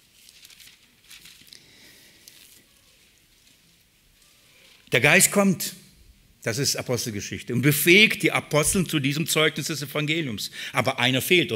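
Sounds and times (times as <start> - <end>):
pages of a book being turned to Acts chapter 1: 0.0 - 1.6, 2.2 - 5.0
speech: 4.9 - 5.8, 6.4 - 11.5.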